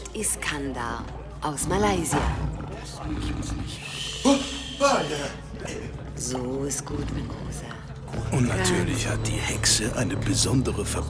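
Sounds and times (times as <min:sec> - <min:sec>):
low rumbling background: 0:00.0 - 0:11.0
speech: 0:00.2 - 0:11.0
big cat roaring: 0:01.6 - 0:09.0.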